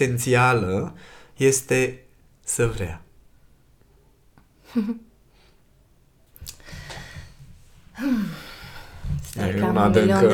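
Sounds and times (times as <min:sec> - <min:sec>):
speech: 0:00.0 - 0:03.0, 0:04.7 - 0:05.1, 0:08.0 - 0:08.5, 0:09.4 - 0:10.3
heavy breathing: 0:06.5 - 0:09.3.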